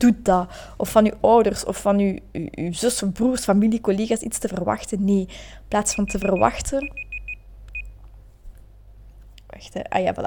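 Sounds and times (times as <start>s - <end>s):
speech: 0.0s - 7.0s, 9.5s - 10.2s
low hum: 0.0s - 10.2s
short bright electronic timer alarm beeps: 5.9s - 8.0s.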